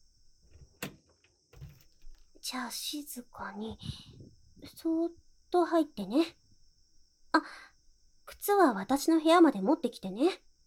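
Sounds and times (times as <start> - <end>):
house door opening: 1.6 - 2.4
speech: 2.4 - 6.4, 7.4 - 7.7, 8.4 - 10.5.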